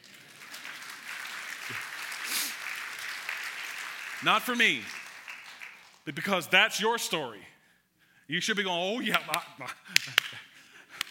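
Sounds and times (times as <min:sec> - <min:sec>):
sizable audience applause: 0:00.0 - 0:06.1
speech: 0:04.2 - 0:05.0, 0:06.1 - 0:07.5, 0:08.3 - 0:10.4.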